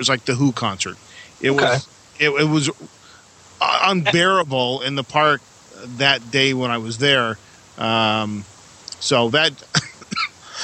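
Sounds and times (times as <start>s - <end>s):
speech: 0.0s - 3.0s, 3.6s - 9.9s
person clearing their throat: 9.8s - 10.6s
person coughing: 9.8s - 10.6s.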